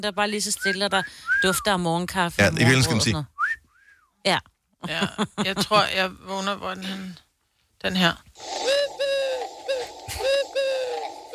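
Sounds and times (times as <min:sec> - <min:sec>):
speech: 0:00.0 - 0:03.3, 0:04.2 - 0:07.2, 0:07.8 - 0:09.1
small dove cooing: 0:08.4 - 0:11.3.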